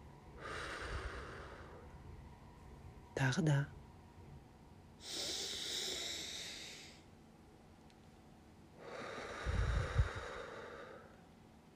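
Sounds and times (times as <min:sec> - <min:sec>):
deep breath in through the nose and out through the mouth: 0:00.4 - 0:02.0, 0:05.0 - 0:07.1, 0:08.8 - 0:11.3
speech: 0:03.2 - 0:03.8.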